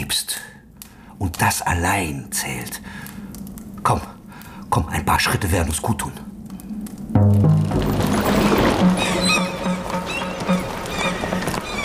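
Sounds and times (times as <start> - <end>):
speech: 0.0 - 0.5, 1.2 - 3.1, 3.8 - 6.3
horse hooves clip-clopping: 6.5 - 11.8
horse-drawn wagons carrying woollen cloth rolling past: 7.6 - 11.8.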